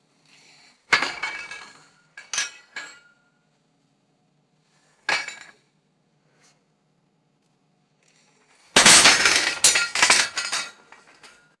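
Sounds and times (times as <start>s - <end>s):
hollow metal pipes rattling and clanking: 8.8s - 11.3s.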